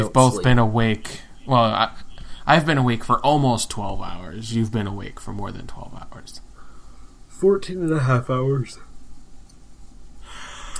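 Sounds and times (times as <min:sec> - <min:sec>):
speech: 0:00.0 - 0:06.4, 0:07.4 - 0:08.9
soft breathy yawn: 0:10.3 - 0:10.7.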